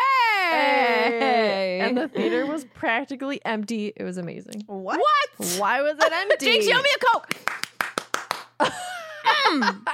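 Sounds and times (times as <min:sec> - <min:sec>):
speech: 0:00.5 - 0:07.6, 0:08.6 - 0:08.9, 0:09.5 - 0:09.9
quick sharp hand claps: 0:07.2 - 0:08.7.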